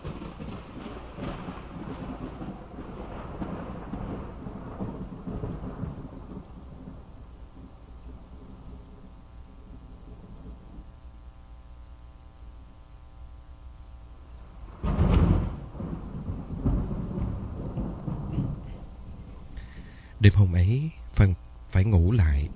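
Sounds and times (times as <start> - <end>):
loud thunder crack: 0.0 - 11.0, 14.4 - 20.6
heavy rain downpour: 0.0 - 11.1, 14.4 - 22.5
low hum: 0.0 - 22.5
speech: 20.2 - 22.5.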